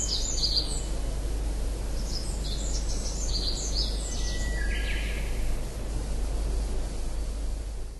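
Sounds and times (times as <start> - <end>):
tree pipit singing: 0.0 - 1.0, 1.8 - 5.4
constant low-pitched background noise: 0.0 - 7.9.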